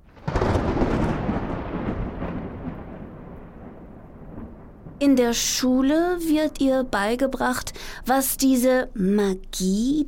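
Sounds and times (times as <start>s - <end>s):
thunder clap rolling and rumbling: 0.0s - 7.7s
speech: 5.0s - 10.0s.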